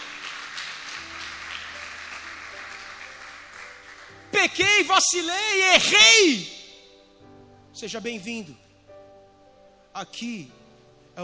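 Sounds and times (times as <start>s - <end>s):
crowd applauding: 0.0s - 4.7s
speech: 4.4s - 6.6s, 7.8s - 8.6s, 10.0s - 10.6s.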